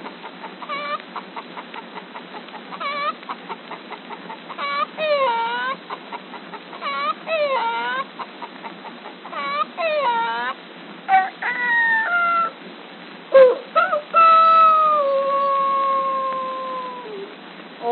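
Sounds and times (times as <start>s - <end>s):
human voice imitating hen cackling: 4.1s - 8.2s, 9.3s - 12.6s, 13.4s - 17.8s.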